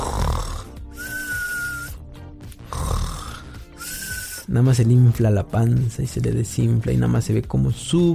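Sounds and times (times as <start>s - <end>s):
person imitating loud snoring with whistling inhale: 0.0s - 2.0s, 2.6s - 4.5s
speech: 4.5s - 8.1s.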